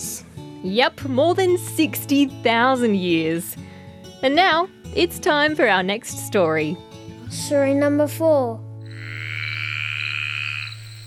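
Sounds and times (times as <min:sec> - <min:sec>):
speech: 0:00.6 - 0:08.7
chorus of frogs croaking in a swamp: 0:08.8 - 0:11.0.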